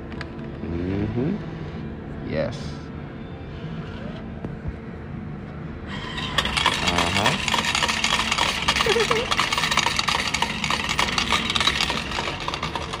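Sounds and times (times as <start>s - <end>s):
low mechanical hum: 0.0s - 12.9s
speech: 1.2s - 1.5s, 2.3s - 2.8s
coins or tokens pouring out and rattling into a tray: 5.9s - 12.9s
laundromat change machine whirring: 5.9s - 12.9s.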